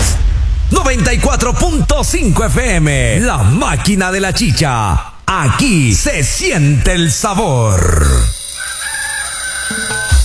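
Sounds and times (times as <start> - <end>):
speech: 0.8 - 8.3
rooster crowing: 8.3 - 10.2.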